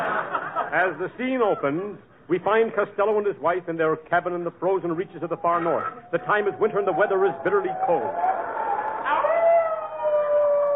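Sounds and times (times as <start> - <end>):
laughter: 0.0 - 1.8
speech: 0.7 - 8.4
wolf howling outside a cabin in Alaska in bitterly cold winter: 5.4 - 10.7.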